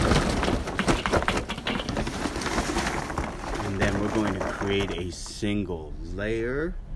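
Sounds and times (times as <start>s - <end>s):
charcoal briquettes pouring into a metal kettle grill: 0.0s - 5.2s
speech: 4.7s - 6.8s.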